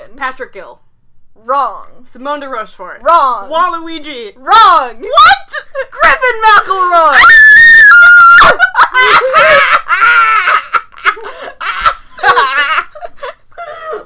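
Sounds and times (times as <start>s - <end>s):
speech: 0.2s - 7.3s
loud piercing high-pitched scream: 7.1s - 8.6s
several voices laughing in overlapping cackling peals: 8.0s - 14.0s.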